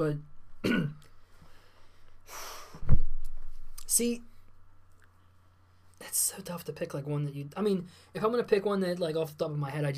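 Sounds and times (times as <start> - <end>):
speech: 0.0 - 1.0, 4.0 - 4.3, 6.0 - 9.9
person coughing: 0.6 - 1.0.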